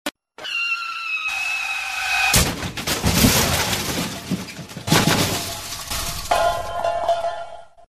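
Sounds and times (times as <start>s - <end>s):
brakes squealing: 0.5s - 2.4s
crash impact: 2.3s - 7.8s.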